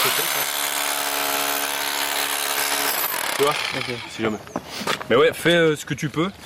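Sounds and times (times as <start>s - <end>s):
hammer drill running: 0.0s - 4.2s
speech: 3.4s - 6.4s.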